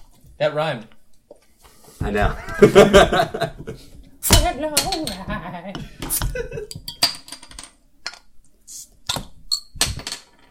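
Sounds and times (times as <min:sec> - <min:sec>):
speech: 0:00.4 - 0:01.0, 0:02.0 - 0:07.0
laughter: 0:02.2 - 0:03.9, 0:05.3 - 0:06.7
glass and metal clinking as beer bottles are opened: 0:04.3 - 0:08.2, 0:09.1 - 0:10.4.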